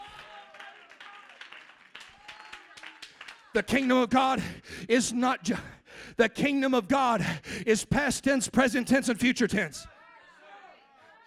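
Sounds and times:
audience clapping: 0.0 - 4.5
speech: 3.6 - 10.0.

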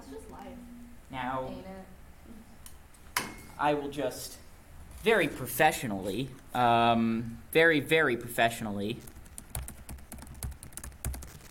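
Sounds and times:
speech: 0.2 - 2.4, 3.6 - 4.4, 5.0 - 9.1
typing on a computer keyboard: 9.0 - 11.4.

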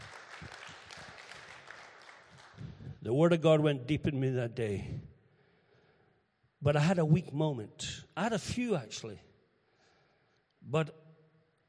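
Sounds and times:
crowd applauding: 0.0 - 3.0
speech: 3.1 - 5.1, 6.6 - 9.3, 10.7 - 11.0.

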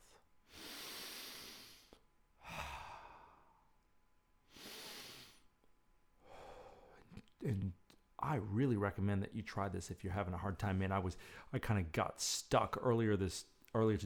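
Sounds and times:
slow deep breathing: 0.0 - 3.8, 4.5 - 5.5, 6.2 - 7.2, 11.2 - 11.5
speech: 7.4 - 14.0.

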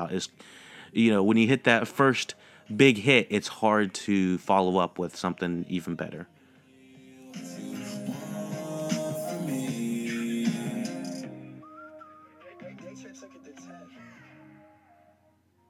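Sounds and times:
speech: 0.0 - 6.3
full loud band backing: 7.4 - 11.6
whistled melody: 9.1 - 13.9.

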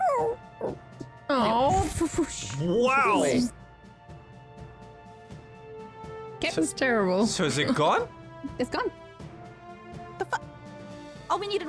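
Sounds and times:
dog whimpering: 0.0 - 0.8
speech: 0.2 - 3.6, 6.4 - 9.0, 11.4 - 11.6.

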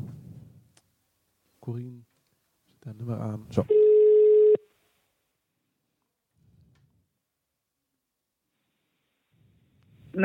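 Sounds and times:
speech: 1.6 - 2.1, 2.8 - 3.9
telephone line ringback tone as a call is placed: 3.7 - 4.6.

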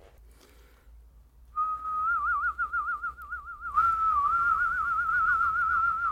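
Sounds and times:
two people whistling a tune in a beatbox duet: 1.6 - 6.1.

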